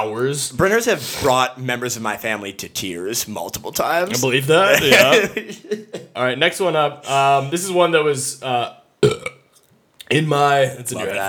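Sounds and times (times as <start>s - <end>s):
speech: 0.0s - 8.8s, 10.1s - 11.2s
laughter: 4.6s - 6.2s
loud deep burp into a microphone: 9.0s - 9.5s.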